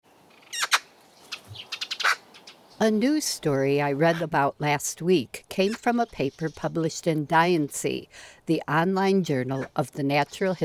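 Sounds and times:
Eurasian Magpie giving harsh chatter notes: 0:00.4 - 0:02.9, 0:05.6 - 0:06.9, 0:09.4 - 0:10.6
speech: 0:02.8 - 0:10.6.

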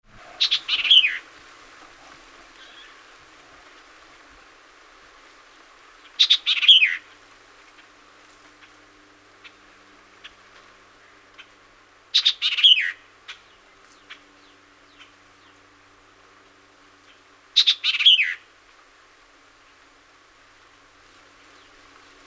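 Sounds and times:
White-eyed Vireo singing: 0:00.3 - 0:01.3, 0:02.5 - 0:03.2, 0:06.0 - 0:07.1, 0:08.6 - 0:16.0, 0:17.0 - 0:18.5.

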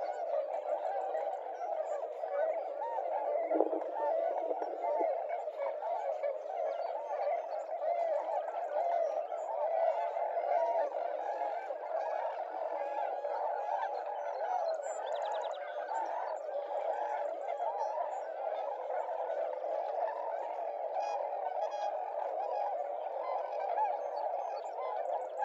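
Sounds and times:
tundra swan flock hooting and yelping: 0:00.0 - 0:25.4.

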